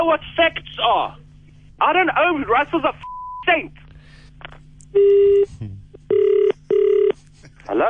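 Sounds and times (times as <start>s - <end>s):
speech: 0.0s - 1.2s, 1.8s - 3.8s, 4.4s - 5.8s, 7.7s - 7.8s
loud steady telephone line tone: 5.0s - 5.5s, 6.1s - 7.2s.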